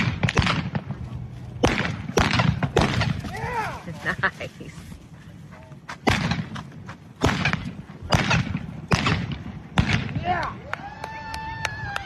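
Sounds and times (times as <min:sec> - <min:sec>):
blank pistol shots fired from two pistols by a mounted shooter: 0:00.0 - 0:01.0, 0:01.6 - 0:03.3, 0:06.0 - 0:06.6, 0:07.2 - 0:10.3
horse at speed rumbling thudding movement: 0:00.0 - 0:10.4
people shouting and whooping: 0:03.3 - 0:04.0, 0:10.2 - 0:12.0
speech: 0:04.1 - 0:04.8.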